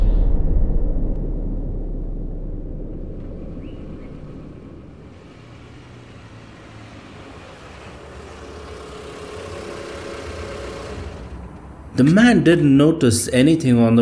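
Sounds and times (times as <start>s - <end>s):
car engine rumbling as the vehicle drives off: 0.8s - 12.0s
speech: 12.0s - 14.0s.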